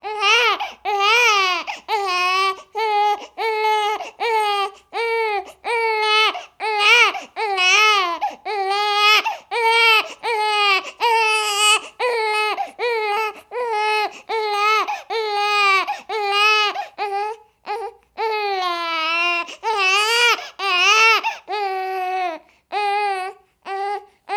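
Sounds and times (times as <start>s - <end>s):
human baby crying: 0.0s - 24.3s.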